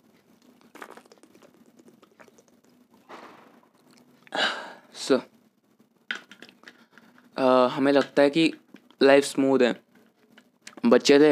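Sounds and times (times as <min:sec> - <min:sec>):
small wet mouth clicks: 0:00.4 - 0:03.0, 0:03.8 - 0:04.3
man with a dry throat gulping water: 0:00.4 - 0:04.4
speech: 0:04.3 - 0:05.3, 0:07.5 - 0:09.8, 0:10.9 - 0:11.3.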